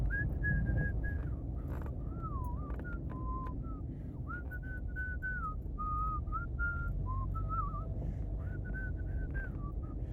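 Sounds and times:
person whistling a simple wavering tune while exhaling: 0.1s - 1.4s, 2.2s - 9.9s.

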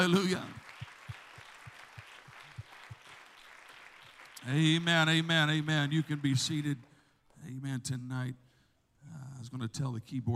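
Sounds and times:
speech: 0.0s - 0.6s, 4.4s - 8.4s, 9.4s - 10.3s
church audience clapping during a worship service: 0.0s - 7.4s.

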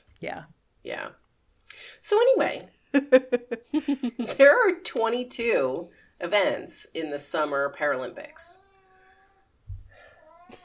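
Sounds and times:
speech: 0.2s - 1.2s, 1.9s - 8.6s
cat meowing: 8.6s - 10.6s.

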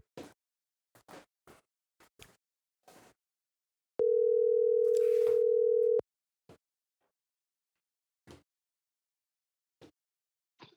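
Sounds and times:
outgoing phone call ringing tone: 4.0s - 6.0s.

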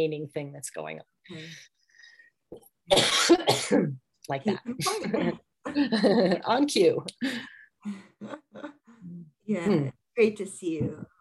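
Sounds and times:
speech: 0.0s - 1.8s, 2.5s - 11.1s
person coughing: 2.9s - 4.0s.

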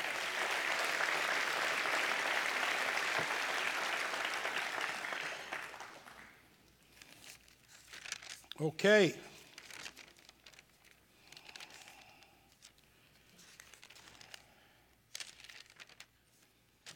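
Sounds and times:
audience applause: 0.0s - 6.4s
speech: 8.6s - 9.3s.

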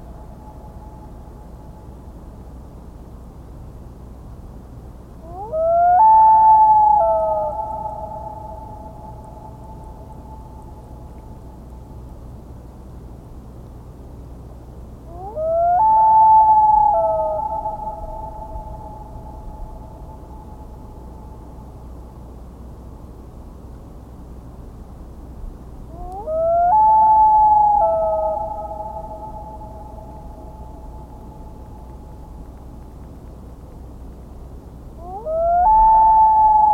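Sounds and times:
low constant rumble: 0.0s - 36.7s
common loon giving wavering wail calls: 5.3s - 9.2s, 15.1s - 20.3s, 25.9s - 31.7s, 35.0s - 36.7s.

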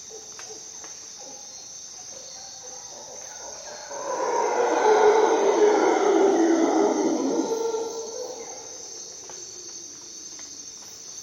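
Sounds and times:
high insect drone: 0.0s - 11.2s
howler monkeys calling at dawn in jungle in Costa Rica: 3.4s - 8.9s.

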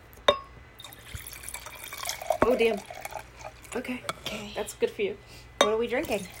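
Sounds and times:
glass clink: 0.3s - 3.2s
wine pouring into a glass: 0.8s - 3.8s, 6.0s - 6.3s
speech: 2.5s - 3.0s, 3.7s - 6.3s.

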